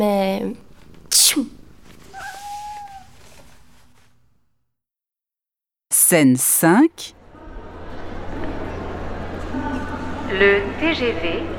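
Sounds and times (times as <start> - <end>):
speech: 0.0 - 1.6, 6.1 - 7.2, 10.3 - 11.5
domestic cat giving a sneeze-like burst: 1.1 - 3.2
domestic cat meowing: 2.0 - 3.4.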